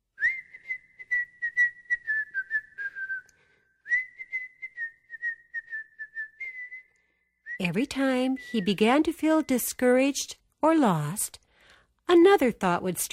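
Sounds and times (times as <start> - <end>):
person whistling a happy folk tune: 0.2 - 8.7
speech: 7.6 - 11.4, 12.1 - 13.1.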